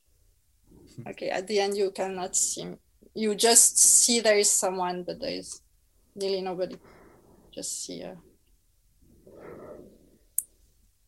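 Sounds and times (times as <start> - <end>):
speech: 0.9 - 5.6, 6.2 - 7.0, 7.6 - 8.3
soft slow airy breath exhale: 9.1 - 10.2.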